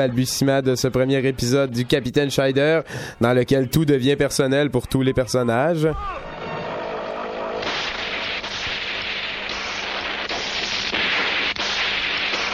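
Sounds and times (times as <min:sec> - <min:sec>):
speech: 0:00.0 - 0:06.3
explosion of a villain in an animated cartoon: 0:07.4 - 0:12.5.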